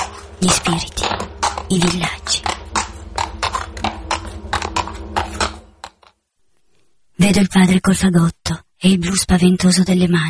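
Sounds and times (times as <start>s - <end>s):
donkey hooves clip-clopping: 0.0s - 6.2s
low hum: 0.0s - 10.2s
speech: 0.4s - 2.5s, 7.3s - 10.2s.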